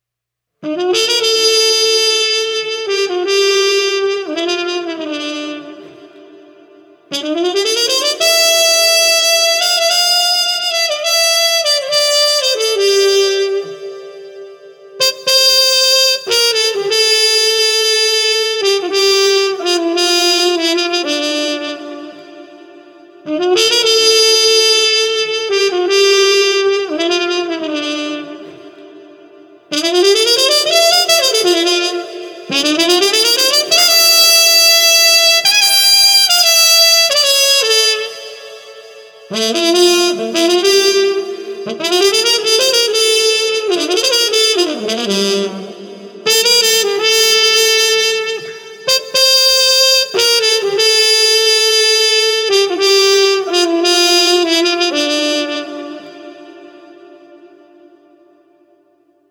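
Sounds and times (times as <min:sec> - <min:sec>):
muted street trumpet: 0:00.6 - 0:59.3.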